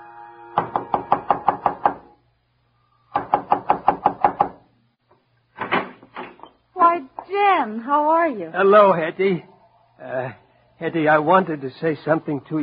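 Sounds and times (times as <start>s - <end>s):
knocking on a door: 0.6s - 2.0s, 3.2s - 4.6s
speech: 7.6s - 12.6s.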